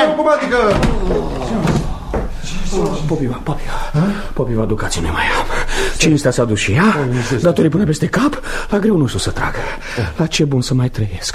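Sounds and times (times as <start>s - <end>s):
speech: 0.2s - 1.7s, 2.7s - 11.3s
window being closed: 0.4s - 3.0s.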